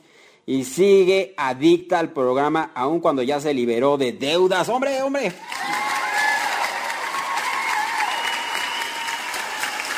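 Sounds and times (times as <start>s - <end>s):
speech: 0.5s - 5.5s
crowd clapping: 5.4s - 9.9s
cheering whistles and shouts: 5.6s - 9.9s.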